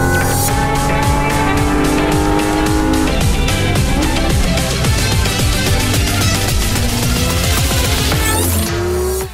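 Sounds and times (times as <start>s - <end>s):
Porsche Cayman GT4 RS 4.0-litre six-cylinder boxer engine accelerating on racetrack: 0.0s - 9.3s.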